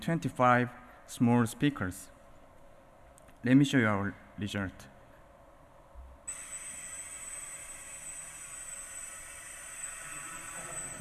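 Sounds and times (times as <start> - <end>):
speech: 0.0 - 2.2, 3.4 - 4.9
drone whirring hiss with high-pitched whine: 6.3 - 10.9.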